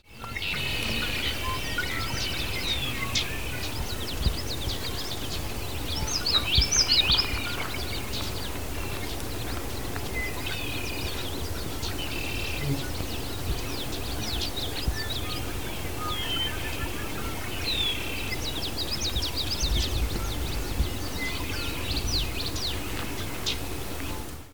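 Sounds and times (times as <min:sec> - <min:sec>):
Common Yellowthroat singing: 0:00.0 - 0:23.6.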